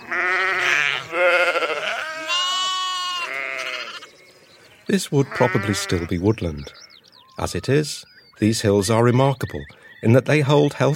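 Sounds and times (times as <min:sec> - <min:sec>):
sheep on upland fells in England bleating: 0:00.0 - 0:04.1, 0:05.2 - 0:06.9
speech: 0:04.9 - 0:06.8, 0:07.4 - 0:10.9.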